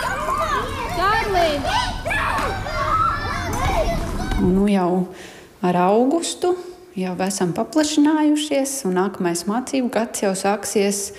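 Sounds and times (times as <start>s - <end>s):
children chattering and playing in a preschool yard in Latvia: 0.0s - 5.0s
speech: 1.4s - 2.0s, 4.4s - 11.1s.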